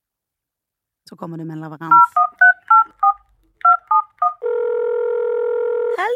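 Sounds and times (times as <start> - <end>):
speech: 1.1 - 2.2
two-tone telephone keypad beeps: 1.9 - 4.4
steady continuous telephone tone: 3.9 - 6.0.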